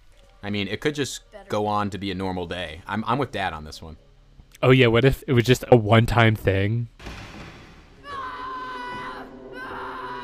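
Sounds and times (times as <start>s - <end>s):
speech: 0.4s - 4.0s, 4.6s - 7.2s
boy screaming: 8.0s - 10.2s.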